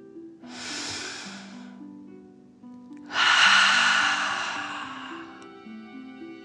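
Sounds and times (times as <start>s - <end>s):
soft steady music: 0.0s - 6.4s
deep audible inhale through the nose: 0.5s - 1.8s, 3.1s - 5.5s
long loud whooshing exhale through the mouth: 0.5s - 1.8s, 3.1s - 5.4s.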